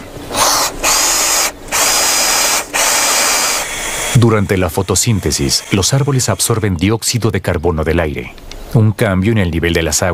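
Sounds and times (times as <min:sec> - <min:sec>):
power drill drilling a plate: 0:00.3 - 0:06.6
speech: 0:04.2 - 0:10.1.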